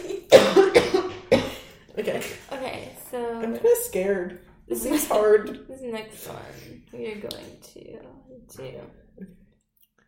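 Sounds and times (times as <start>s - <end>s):
person coughing: 0.0s - 1.8s
speech: 3.4s - 9.4s.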